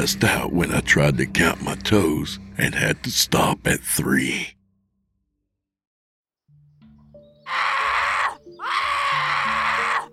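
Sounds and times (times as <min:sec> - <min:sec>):
speech: 0:00.0 - 0:04.6
quiet low droning background: 0:00.0 - 0:05.6
person waking up screaming: 0:07.5 - 0:10.1.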